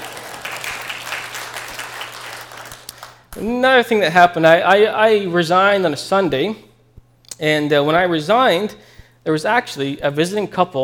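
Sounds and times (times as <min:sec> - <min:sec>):
church audience applause: 0:00.0 - 0:03.3
speech: 0:03.4 - 0:06.7, 0:07.4 - 0:10.8.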